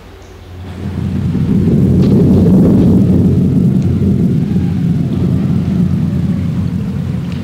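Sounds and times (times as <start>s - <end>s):
steady rain hissing: 0.4s - 7.4s
deep sustained rumble of thunder: 0.5s - 7.4s.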